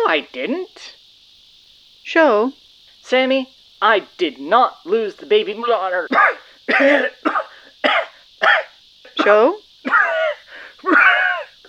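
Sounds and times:
speech: 0.1 - 1.0, 2.1 - 10.1
person wheezing after inhaling a bug: 6.2 - 8.7, 9.9 - 11.6.

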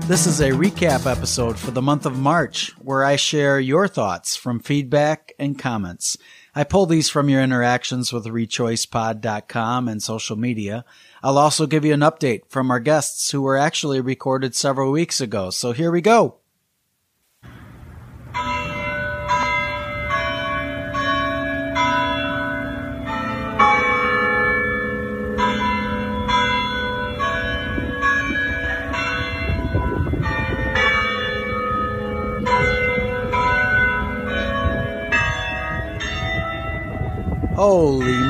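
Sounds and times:
speech: 0.1 - 16.4, 37.6 - 38.2
church bells in Grand Rapids chiming a hymn melody: 18.3 - 38.2.

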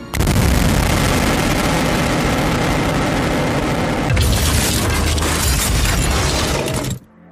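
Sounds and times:
massive explosion of an entire penthouse: 0.2 - 6.8
shattering debris from penthouse explosion: 4.1 - 7.1.

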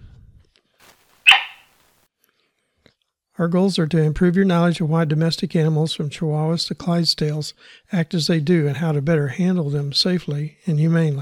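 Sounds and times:
cattle dog barking: 1.3 - 1.7
speech: 3.4 - 11.1.

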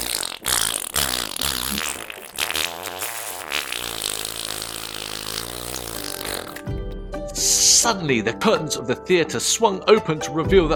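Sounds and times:
long loud buzzing fart: 0.0 - 6.7
speech: 7.4 - 10.7.

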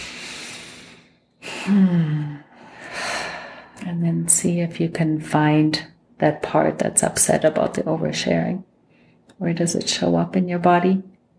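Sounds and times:
deep inhaled breath during a guided relaxation exercise: 0.0 - 3.8
speech: 1.6 - 2.2, 4.3 - 8.7, 9.4 - 11.1.

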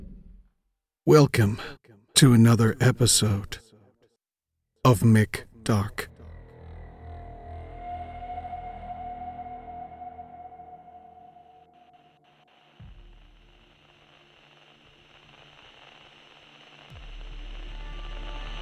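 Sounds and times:
speech: 1.1 - 3.7, 4.9 - 6.1
old radio static with warbling tones: 11.8 - 18.6.

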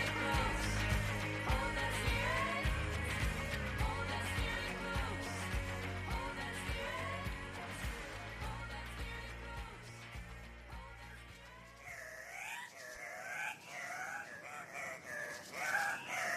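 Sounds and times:
low droning musical passage: 0.0 - 11.8
Andean cock-of-the-rock squawking: 11.8 - 16.3.

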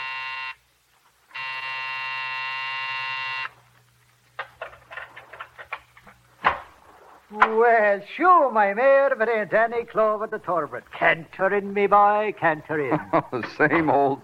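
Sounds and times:
office building night buzzer: 0.0 - 0.6, 1.3 - 3.5
speech: 7.3 - 14.2
laughter: 12.7 - 14.2.

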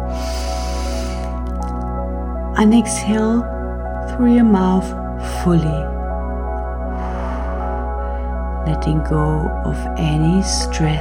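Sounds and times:
deep inhale through the nose: 0.0 - 1.5, 6.9 - 8.4
sustained calm musical tones: 0.0 - 10.9
speech: 2.6 - 3.6, 4.2 - 6.0, 8.7 - 10.9.

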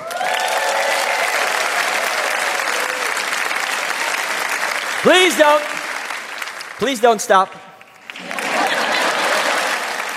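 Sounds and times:
whoops and cheers: 0.0 - 3.6
large crowd applauding after a magic trick: 0.0 - 10.1
speech: 5.0 - 5.7, 6.8 - 7.7
laughter: 8.1 - 10.1.

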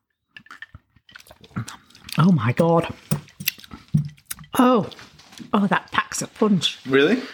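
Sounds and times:
person sipping a margarita from a glass: 0.4 - 5.2
speech: 2.2 - 3.0, 4.6 - 7.3.

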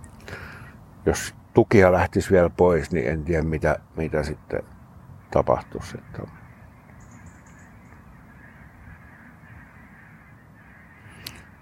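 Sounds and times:
speech: 1.0 - 4.7, 5.3 - 6.4
huge flock of ducks or geese calling: 5.2 - 11.6.

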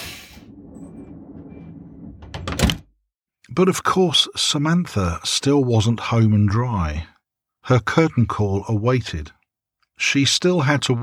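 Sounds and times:
steady low rumble: 0.0 - 2.8
train door sliding shut: 0.0 - 2.9
speech: 3.6 - 7.1, 7.7 - 9.4, 10.0 - 11.0.

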